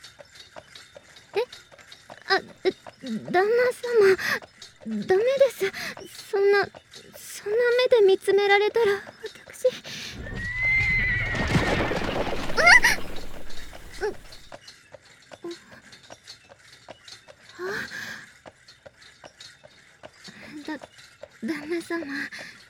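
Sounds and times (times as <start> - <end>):
horse hooves of a horse-drawn tram clip-clopping: 0.0 - 22.6
speech: 2.3 - 6.8, 7.4 - 9.1, 21.9 - 22.4
horse of a horse-drawn tram neighing loudly: 10.1 - 14.5.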